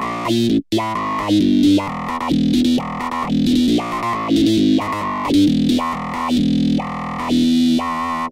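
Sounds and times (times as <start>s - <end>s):
human bass vocal: 0.2s - 8.3s.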